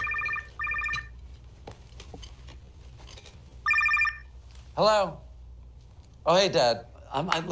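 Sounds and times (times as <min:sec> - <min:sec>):
electronic telephone ringing in a dining room: 0:00.0 - 0:01.2, 0:03.6 - 0:04.3
speech: 0:04.8 - 0:05.2, 0:06.3 - 0:07.5.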